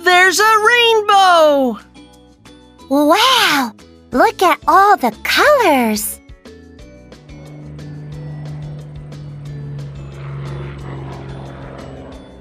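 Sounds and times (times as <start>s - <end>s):
speech: 0.3s - 1.9s, 2.9s - 6.2s
propeller airplane droning high overhead: 6.8s - 12.3s.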